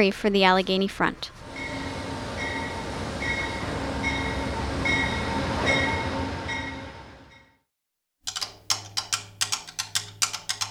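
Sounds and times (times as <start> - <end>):
speech: 0.0 - 1.4
Amtrak train on a Pennsylvania route rolling along the rails: 0.6 - 7.6
sharp rhythmic clacks: 8.3 - 10.7.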